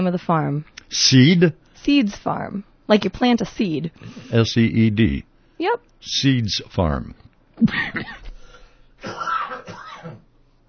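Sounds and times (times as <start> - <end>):
speech: 0.0 - 8.2
harsh throat-clearing coughing fit: 7.6 - 10.3.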